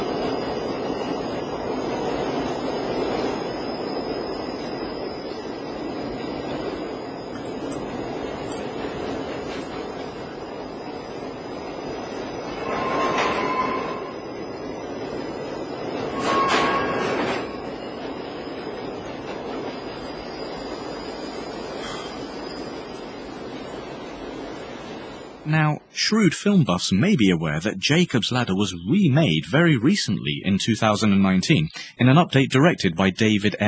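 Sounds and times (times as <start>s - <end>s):
subway train rumbling through a tunnel: 0.0s - 33.6s
metallic screeches and squeals: 12.6s - 14.2s, 16.1s - 17.6s
speech: 25.5s - 33.6s.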